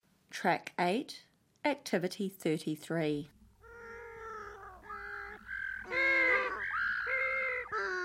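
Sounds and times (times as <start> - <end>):
speech: 0.4 - 3.4
penguins braying honks: 3.7 - 8.0.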